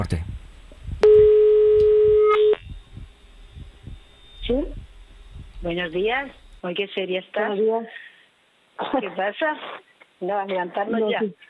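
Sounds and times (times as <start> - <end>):
speech: 0.0 - 0.3, 5.6 - 8.1, 8.8 - 11.4
soft low pulsing background: 0.0 - 6.6
telephone line tone of an outgoing call: 1.0 - 2.6.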